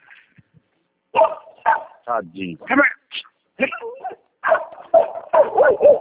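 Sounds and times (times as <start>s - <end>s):
strained dog barks: 1.1s - 2.1s, 3.6s - 5.9s
dogs fighting: 1.2s - 2.0s, 3.7s - 5.9s
speech: 2.1s - 3.0s.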